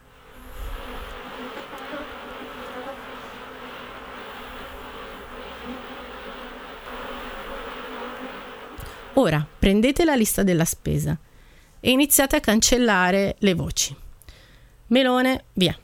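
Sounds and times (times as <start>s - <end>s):
many bees buzzing: 0.0s - 9.8s
speech: 9.2s - 14.0s, 14.9s - 15.8s.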